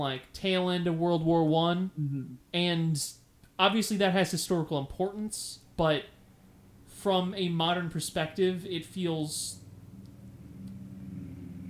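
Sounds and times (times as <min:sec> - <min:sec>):
speech: 0:00.0 - 0:06.2, 0:07.0 - 0:09.6
many cars driving past on the road outside at night: 0:09.5 - 0:11.6.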